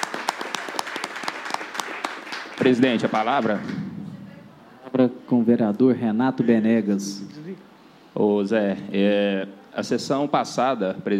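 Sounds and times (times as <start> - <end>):
applause during a town council session: 0.0 - 3.9
speech: 2.6 - 3.9, 4.9 - 11.1.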